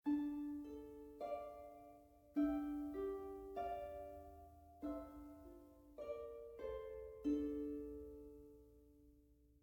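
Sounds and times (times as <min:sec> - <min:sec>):
harp from a video game: 0:00.0 - 0:09.4.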